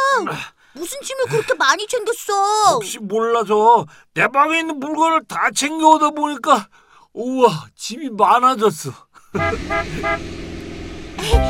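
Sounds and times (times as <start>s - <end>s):
speech: 0.2s - 10.4s, 11.2s - 11.4s
arriving bus horn honking: 9.4s - 10.8s
bus engine idling rumble: 9.4s - 11.4s.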